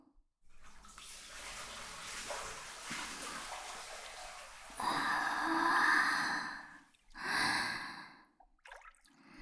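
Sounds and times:
water sloshing in a hot bath: 0.5s - 7.3s, 8.6s - 9.1s.

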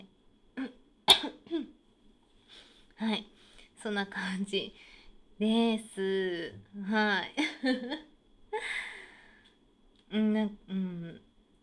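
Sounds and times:
person clearing throat: 1.1s - 1.4s
speech: 3.0s - 8.1s, 10.1s - 11.2s.

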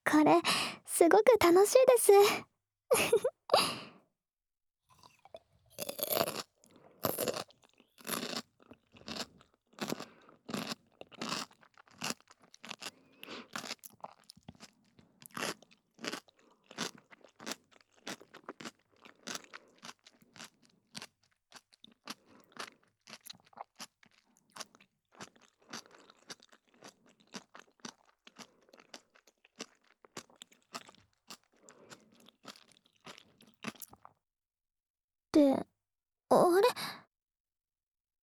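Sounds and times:
speech: 0.1s - 3.8s
crunching and chewing of pickles: 4.9s - 34.2s.

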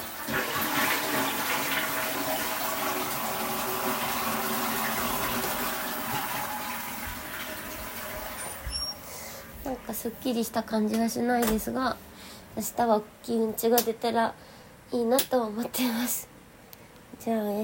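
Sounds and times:
toilet flushing: 0.0s - 9.6s
speech: 9.9s - 16.3s, 17.2s - 17.6s.

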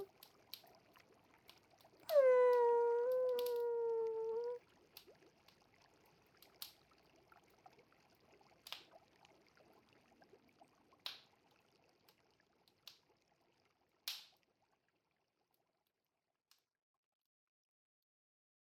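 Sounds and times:
faint trickle of water: 0.0s - 16.7s
dog howling: 2.1s - 4.6s.

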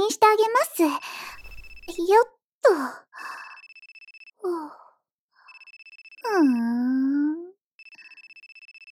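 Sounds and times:
speech: 0.4s - 1.2s, 2.0s - 3.4s, 6.2s - 7.5s
smartphone ringing with pulsing electronic ringtone: 3.3s - 4.4s, 5.4s - 6.7s, 7.8s - 8.9s.

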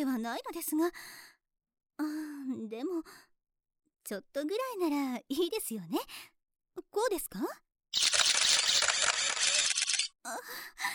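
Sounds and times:
speech: 0.1s - 1.3s, 2.0s - 3.3s, 4.1s - 8.1s, 10.3s - 10.9s
many camera shutters clicking at a cosplay event: 8.0s - 10.1s.

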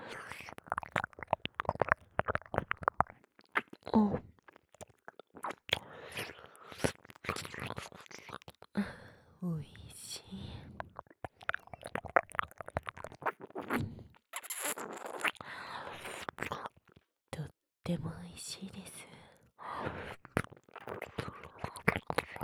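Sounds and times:
ASMR tongue licking and massaging an ear: 0.3s - 8.7s, 10.8s - 15.4s, 19.8s - 22.4s
soft whispering: 8.8s - 10.9s, 17.3s - 20.2s
speech: 17.9s - 19.0s.

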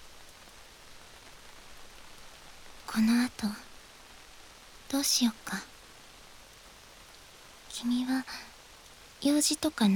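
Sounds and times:
steady rain pouring on a surface: 0.0s - 9.9s
speech: 2.9s - 3.7s, 4.9s - 5.7s, 7.8s - 8.5s, 9.2s - 9.9s.

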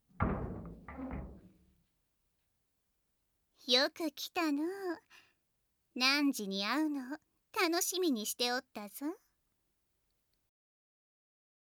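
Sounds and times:
door swinging open with a scraping rumbling sweep: 0.1s - 1.7s
speech: 3.7s - 5.2s, 6.0s - 9.2s.

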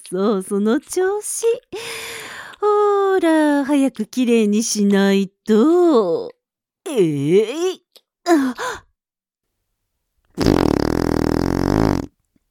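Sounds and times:
speech: 0.1s - 2.0s, 2.6s - 8.8s
long loud buzzing fart: 10.4s - 12.1s.

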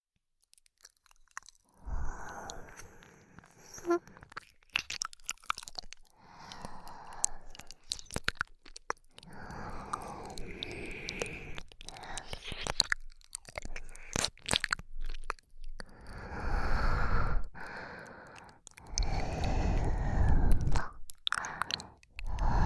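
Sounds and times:
wet ASMR mouth sounds of licking the left ear: 0.5s - 22.6s.

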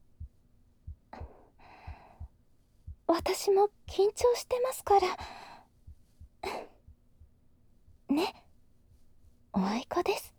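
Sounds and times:
heartbeat thumping: 0.0s - 8.4s
speech: 3.1s - 5.4s.

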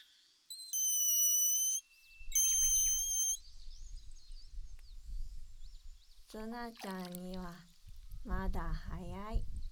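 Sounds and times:
grass whistle blown on a foxtail grass blade squealing: 0.7s - 3.5s
speech: 6.3s - 9.6s.

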